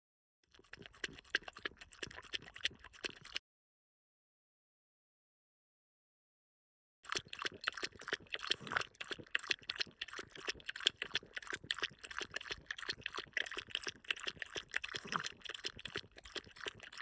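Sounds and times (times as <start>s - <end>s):
French Bulldog lapping water: 0.5s - 3.4s, 7.1s - 17.0s.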